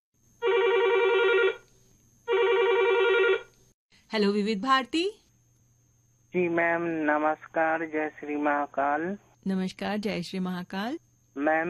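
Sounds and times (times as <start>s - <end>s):
telephone ringing with electronic trill: 0.4s - 1.6s, 2.3s - 3.5s
speech: 4.1s - 5.2s, 6.3s - 11.6s.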